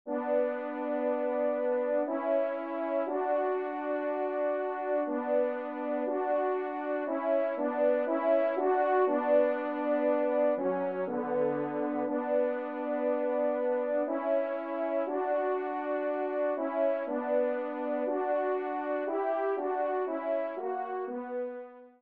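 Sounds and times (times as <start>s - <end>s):
duo ensemble of horns playing: 0.1s - 21.5s.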